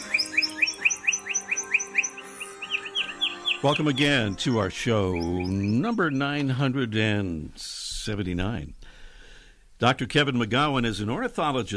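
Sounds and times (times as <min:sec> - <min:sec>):
lark bunting song: 0:00.0 - 0:07.2
speech: 0:03.6 - 0:08.8, 0:09.8 - 0:11.7.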